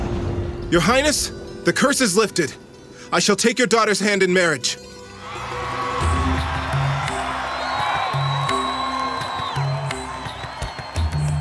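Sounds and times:
speech: 0.7 - 4.9
large crowd cheering and whooping in jubilation: 5.1 - 11.3.

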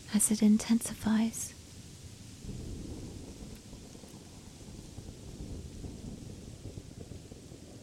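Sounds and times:
heavy rain in a thunderstorm: 0.0 - 7.8
speech: 0.1 - 1.6
strong wind in a thunderstorm: 1.6 - 7.8
thunder rumbling: 1.9 - 7.8.

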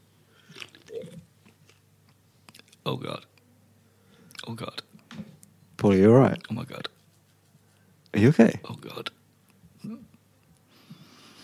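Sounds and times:
person sipping golden pale ale: 0.3 - 1.8
soft swallow: 0.4 - 1.8
small wet mouth sounds: 0.5 - 1.8
speech: 2.9 - 3.3, 4.5 - 4.8, 5.8 - 6.9, 8.2 - 9.2.

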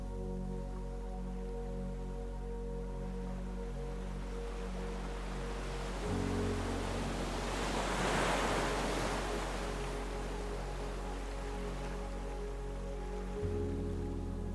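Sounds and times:
soft relaxing music with sustained low chords: 0.0 - 14.5
waves: 2.5 - 14.5.

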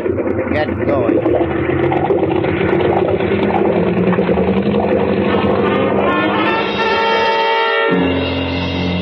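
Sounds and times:
boat's two big engines droning: 0.0 - 9.0
speech: 0.6 - 4.2.

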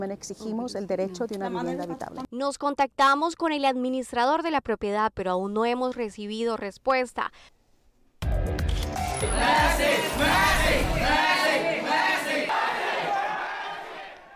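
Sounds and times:
speech: 0.0 - 7.6, 8.3 - 11.3
large crowd of fans cheering and screaming for a soccer star: 8.9 - 14.3.

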